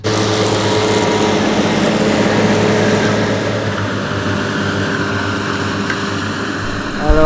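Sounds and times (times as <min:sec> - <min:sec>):
tractor engine droning: 0:00.0 - 0:07.2.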